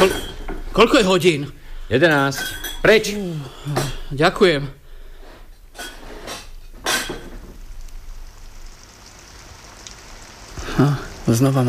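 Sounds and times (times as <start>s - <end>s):
speech: 0.0s - 4.8s, 10.8s - 11.6s
steady rain hissing: 6.8s - 11.6s.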